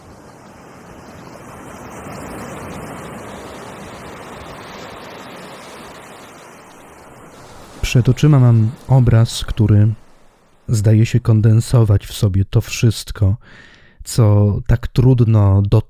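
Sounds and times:
ocean surf roaring with waves washing: 0.0s - 12.9s
windy hiss: 0.0s - 14.4s
speech: 7.9s - 10.0s, 10.7s - 15.8s.

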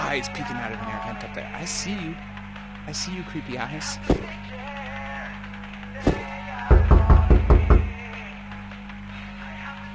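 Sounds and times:
speech: 0.2s - 4.8s
knocking in a VR game: 6.1s - 8.0s.

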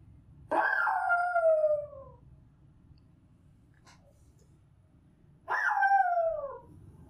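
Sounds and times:
low hum: 0.0s - 7.0s
dog giving howling barks: 0.5s - 2.2s, 5.5s - 6.7s.

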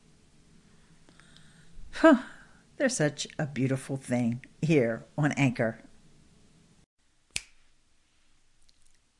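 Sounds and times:
speech: 2.0s - 5.9s
single sharp finger snap: 7.3s - 7.6s.

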